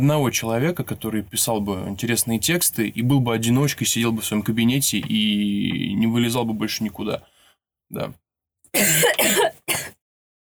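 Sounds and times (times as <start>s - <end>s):
speech: 0.0s - 7.3s, 7.9s - 10.0s
person coughing: 8.8s - 10.0s.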